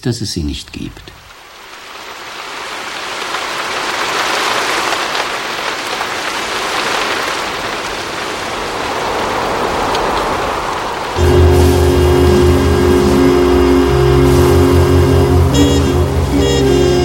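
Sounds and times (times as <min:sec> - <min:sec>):
speech: 0:00.0 - 0:01.2
heavy rain driven slantwise by wind: 0:00.4 - 0:17.0
low steady hum: 0:11.2 - 0:17.0.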